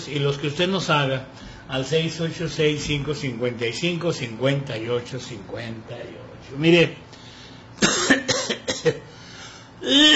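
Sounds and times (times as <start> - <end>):
speech: 0.0 - 7.0
person coughing: 7.8 - 9.1, 9.8 - 10.1.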